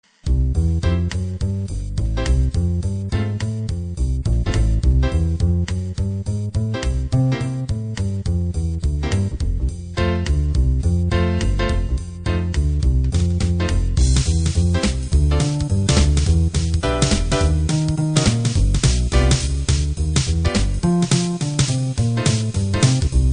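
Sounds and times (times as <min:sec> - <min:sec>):
bop: 0:00.3 - 0:23.3.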